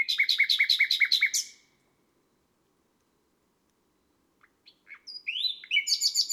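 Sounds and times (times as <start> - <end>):
nightingale singing on a May night: 0.0 - 1.6, 4.4 - 6.3.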